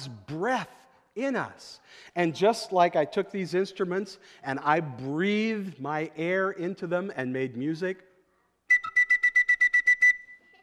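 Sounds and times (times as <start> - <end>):
speech: 0.0 - 8.1
people whistling together: 8.7 - 10.5.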